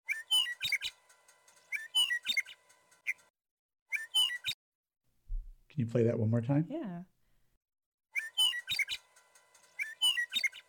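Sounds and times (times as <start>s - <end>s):
Western meadowlark singing: 0.1s - 1.0s, 1.6s - 3.2s, 8.2s - 9.0s, 9.8s - 10.6s
speech: 5.8s - 7.1s.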